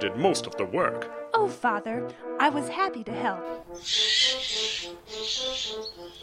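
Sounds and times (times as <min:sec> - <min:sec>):
speech: 0:00.0 - 0:06.2
falcon screeching: 0:03.6 - 0:06.2.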